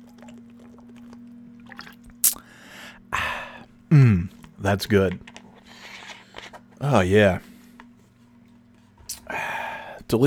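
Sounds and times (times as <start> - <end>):
person slurping a sip of water: 0.0 - 4.6, 9.1 - 9.8
sharp wet click: 2.2 - 2.4
speech: 3.9 - 5.3, 6.8 - 7.5.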